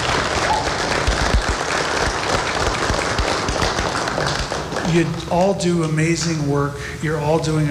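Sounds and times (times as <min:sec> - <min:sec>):
crowd in church pews applauding teachers: 0:00.0 - 0:05.9
speech: 0:04.9 - 0:07.6.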